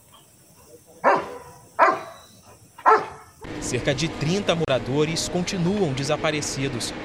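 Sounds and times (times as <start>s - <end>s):
search and rescue sniffer dog barking: 1.0s - 2.2s, 2.8s - 3.3s
speech: 3.6s - 7.0s.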